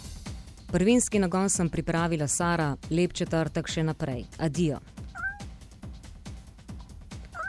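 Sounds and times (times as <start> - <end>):
speech: 0.7 - 5.0
cat meowing: 5.1 - 5.5, 7.3 - 7.4.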